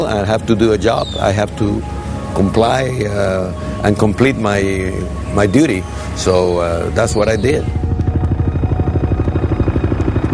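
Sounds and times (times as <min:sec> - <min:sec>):
speech: 0:00.0 - 0:07.8
Navy helicopter rotor thumping with engine whine: 0:06.8 - 0:10.3.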